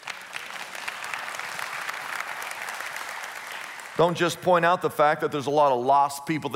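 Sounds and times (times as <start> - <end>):
audience applauding: 0.0 - 4.7
speech: 4.0 - 6.5.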